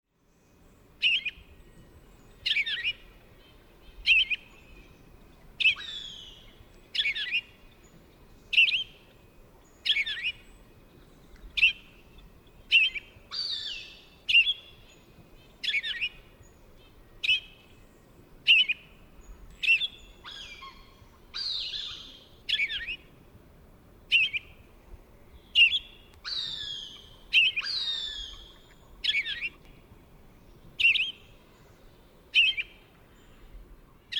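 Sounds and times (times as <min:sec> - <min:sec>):
Purple Finch vireo song: 0:00.2 - 0:23.2, 0:24.0 - 0:34.1
bird alarm call: 0:05.6 - 0:07.8, 0:09.8 - 0:10.5, 0:11.5 - 0:14.9, 0:15.6 - 0:17.6, 0:18.5 - 0:23.1, 0:25.4 - 0:29.7, 0:30.8 - 0:31.7, 0:32.3 - 0:33.4.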